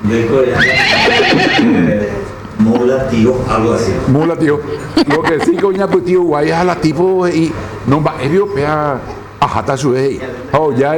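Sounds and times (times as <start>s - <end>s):
speech: 0.1s - 10.9s
person imitating a horse neigh: 0.6s - 2.0s, 4.8s - 5.9s
laughter: 0.9s - 6.9s.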